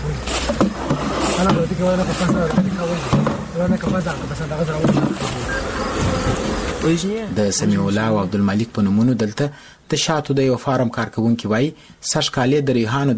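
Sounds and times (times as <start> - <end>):
honeybees buzzing at a bee farm in Kandahar's Dand district: 0.0 - 8.7
speech: 1.4 - 13.1.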